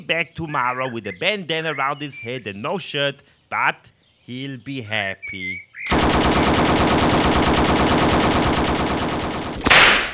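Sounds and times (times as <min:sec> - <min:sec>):
speech: 0:00.1 - 0:07.8
M60 machine gun firing a long rapid burst: 0:05.9 - 0:10.1
sharp crack: 0:05.9 - 0:10.1.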